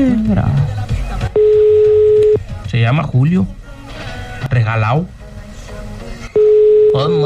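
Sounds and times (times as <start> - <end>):
speech: 0.3 - 0.8, 2.9 - 3.6, 4.7 - 5.2, 7.0 - 7.2
telephone call electronic ring tone: 1.4 - 2.4, 6.4 - 7.2.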